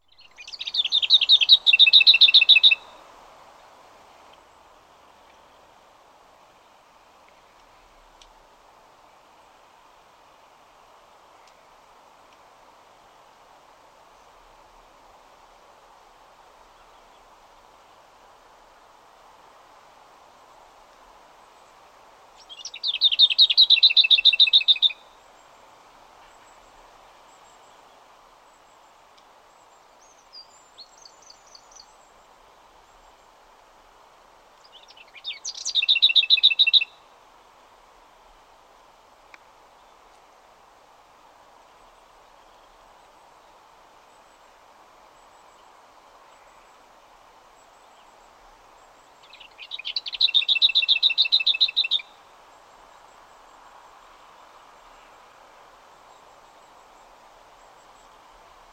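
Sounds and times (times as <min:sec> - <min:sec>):
Lesser Whitethroat singing: 0:00.0 - 0:03.0, 0:22.4 - 0:25.1, 0:30.0 - 0:32.0, 0:34.6 - 0:37.0, 0:49.0 - 0:52.2.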